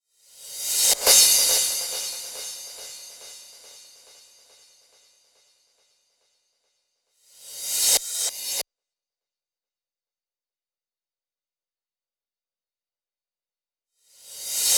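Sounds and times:
crash cymbal mix: 0.3 - 5.6, 7.2 - 8.6, 14.2 - 14.7.

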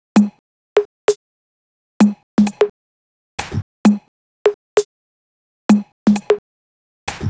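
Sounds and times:
jig drum kit: 0.1 - 0.4, 2.0 - 2.7, 3.4 - 4.1, 5.7 - 6.4, 7.1 - 7.2.

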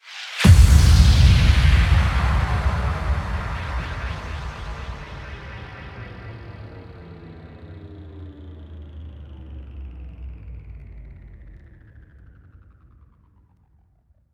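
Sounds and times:
boom: 0.4 - 7.1.

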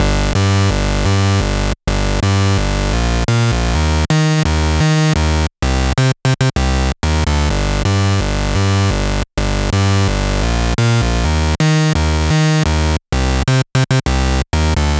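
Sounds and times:
bass line: 0.0 - 5.9, 6.6 - 14.9.

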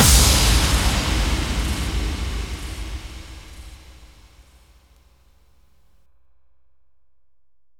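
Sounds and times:
bass drum FX kicks: 0.0 - 4.4.

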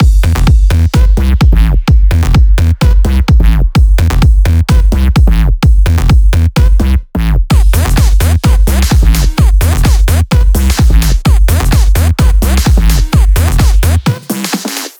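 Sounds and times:
dance music mix: 0.0 - 14.9.

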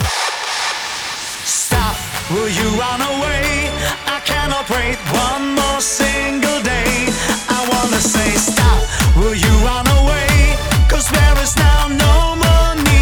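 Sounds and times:
male vocal mix: 1.4 - 12.9.

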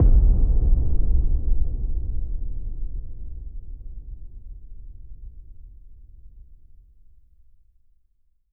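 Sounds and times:
boom effect at 140 BPM: 0.0 - 5.6.

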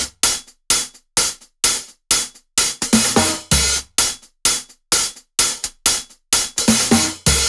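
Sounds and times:
big beat drum kit: 0.0 - 7.4.

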